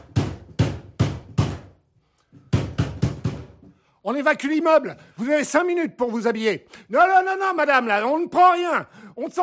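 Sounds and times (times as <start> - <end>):
firefighters knocking on an apartment door: 0.0 - 1.8, 2.6 - 3.6
speech: 4.1 - 9.4.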